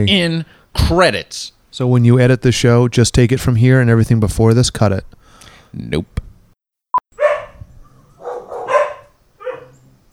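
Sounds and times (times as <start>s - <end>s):
speech: 0.0s - 6.2s
dogs barking: 7.2s - 7.6s, 8.2s - 9.9s.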